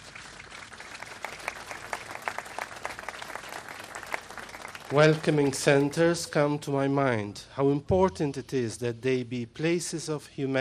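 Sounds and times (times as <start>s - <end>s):
crowd applauding: 0.0s - 6.2s
speech: 4.9s - 10.5s.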